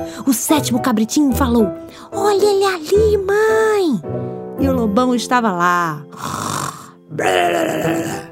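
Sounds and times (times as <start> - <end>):
speech: 0.2 - 8.2
voice imitating loud snoring of a wolf in deep sleep: 6.2 - 8.2.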